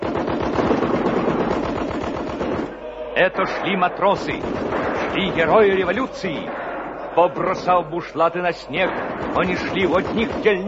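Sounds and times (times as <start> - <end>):
machine guns firing in battle: 0.0 - 2.7, 4.0 - 6.0, 8.8 - 10.6
speech: 3.2 - 6.6, 7.2 - 10.6.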